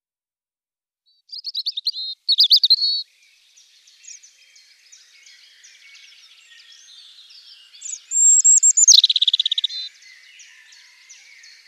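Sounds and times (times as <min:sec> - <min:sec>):
European robin singing: 0:01.1 - 0:11.6.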